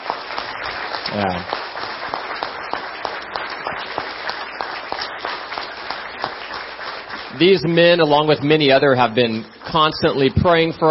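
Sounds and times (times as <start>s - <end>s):
room full of people applauding: 0.0s - 10.9s
speech: 1.1s - 1.6s, 7.4s - 10.9s.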